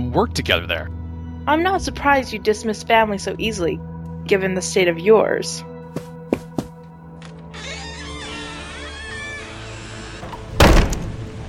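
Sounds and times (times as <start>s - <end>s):
speech: 0.2s - 5.7s
door creaking and scraping as it swings: 6.0s - 11.4s
door shutting with a loud slam: 7.6s - 11.4s.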